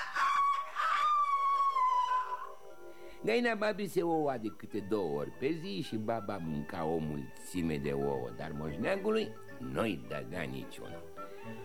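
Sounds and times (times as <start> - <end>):
rooster crowing: 0.0 - 2.8
speech: 3.2 - 11.6.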